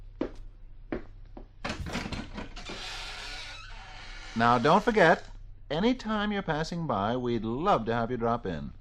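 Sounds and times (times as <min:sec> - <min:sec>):
front door clunks: 0:01.6 - 0:02.8
heavy front door grinding and creaking open with rattling: 0:01.6 - 0:05.3
speech: 0:04.4 - 0:08.7.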